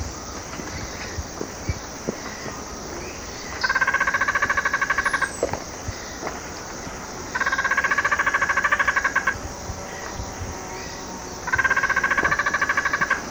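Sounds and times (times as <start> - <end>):
dusky spinetail fast pulsed chatter in Ecuador: 0.0 - 13.2.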